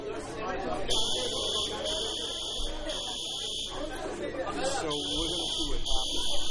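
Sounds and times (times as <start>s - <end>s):
people talking and murmuring: 0.0s - 6.5s
loud steady electronic fire alarm buzzer: 0.9s - 3.9s, 4.8s - 6.5s.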